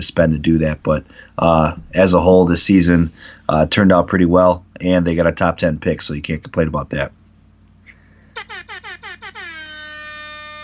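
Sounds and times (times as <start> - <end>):
speech: 0.0 - 7.2
loud air horn staccato honks and long blast: 8.4 - 10.6.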